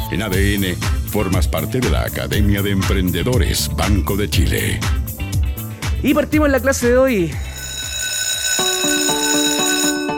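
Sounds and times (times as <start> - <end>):
speech: 0.1 - 5.0, 6.0 - 7.5
school bell ringing with a bright metallic clang: 7.4 - 10.1.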